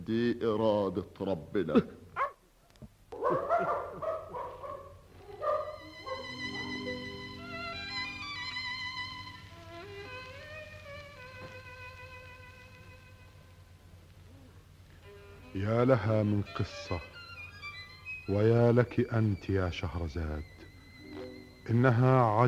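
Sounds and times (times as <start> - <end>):
speech: 0.1 - 2.0, 15.9 - 17.2, 18.3 - 20.6, 21.6 - 22.4
dog barking: 2.2 - 2.4, 3.1 - 6.8
dog whining: 3.2 - 7.1.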